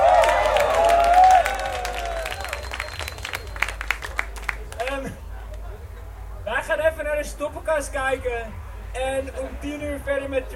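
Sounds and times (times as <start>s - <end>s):
cheering: 0.0s - 4.4s
audience applause: 0.0s - 5.6s
whistle-like tone: 2.3s - 3.8s
speech: 7.8s - 10.5s.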